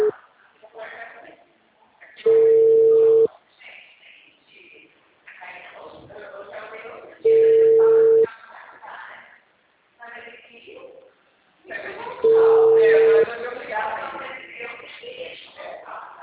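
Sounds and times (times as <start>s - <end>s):
people talking quietly: 0.0s - 16.2s
phone line ringing heard through the receiver: 2.3s - 3.3s, 7.3s - 8.3s, 12.2s - 13.3s.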